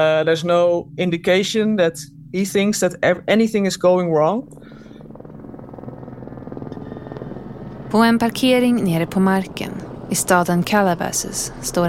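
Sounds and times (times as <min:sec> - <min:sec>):
speech: 0:00.0 - 0:04.8, 0:07.9 - 0:11.8
helicopter rotor thumping overhead above a parking lot in Calabasas: 0:04.5 - 0:11.8.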